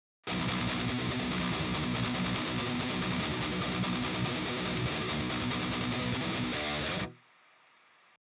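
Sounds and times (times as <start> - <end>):
distorted electric guitars playing a bridge: 0.3 - 7.2.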